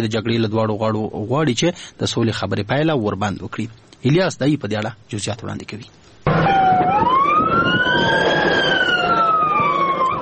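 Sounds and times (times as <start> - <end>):
speech: 0.0 - 6.5
ambulance siren wailing: 6.3 - 10.1.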